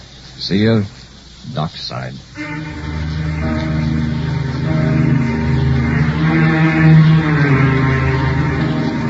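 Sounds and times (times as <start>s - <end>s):
speech: 0.5s - 2.9s
motor launch engine droning: 2.3s - 9.0s.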